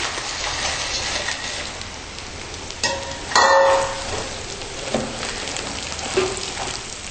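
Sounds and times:
soya protein sizzling in hot oil with softened onions while stirred: 0.0 - 7.0
utensil clang: 2.8 - 4.0.

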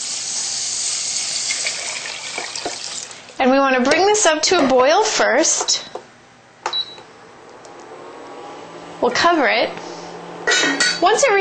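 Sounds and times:
water pouring into a saucepan of millet: 0.0 - 3.4
speech: 3.4 - 6.0, 9.0 - 9.9, 11.0 - 11.3.

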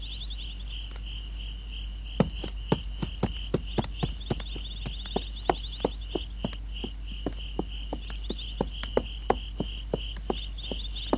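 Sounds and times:
crickets chirring at night: 0.0 - 11.1
horse hooves clip-clopping at a slow walking pace at night: 2.2 - 11.1.

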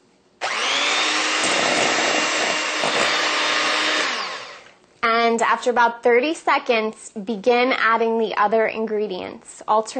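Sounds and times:
electric beater beating egg replacer and water into powdered sugar: 0.4 - 4.8
speech: 5.3 - 9.9.

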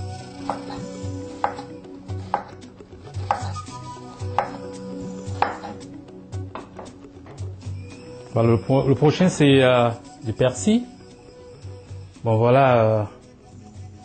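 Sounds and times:
speech: 0.5 - 1.6, 8.4 - 10.9, 12.2 - 13.2
knife chopping onions into small pieces: 0.5 - 2.6, 3.2 - 3.6, 4.3 - 4.7, 5.4 - 5.8.

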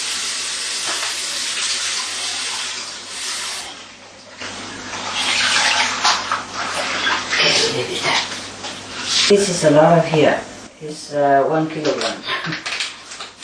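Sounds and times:
tap water running while coriander is washed in a kitchen: 0.0 - 9.6, 11.7 - 13.4
speech: 9.3 - 12.6.

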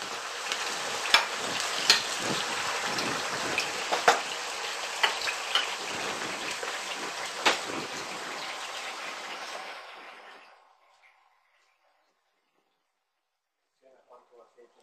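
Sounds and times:
potatoes frying in oil in a pan: 0.0 - 11.8.

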